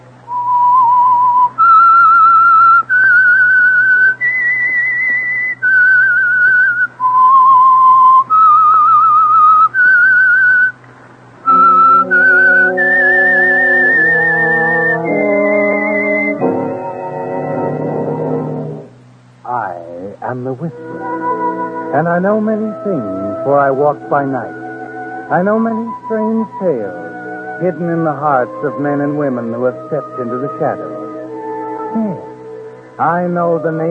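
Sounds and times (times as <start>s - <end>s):
whistled theme melody: 0.3s - 10.8s, 11.4s - 18.6s, 20.7s - 32.8s
orchestral swell: 11.4s - 33.9s
speech: 23.8s - 24.6s, 25.3s - 27.0s, 27.6s - 30.9s, 33.0s - 33.9s.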